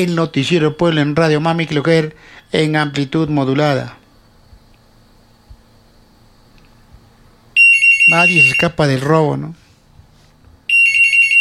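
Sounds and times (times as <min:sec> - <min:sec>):
speech: 0:00.0 - 0:04.0, 0:08.1 - 0:09.6
telephone ringing with an incoming call on a radio news programme's phone line: 0:07.6 - 0:08.8, 0:10.7 - 0:11.4.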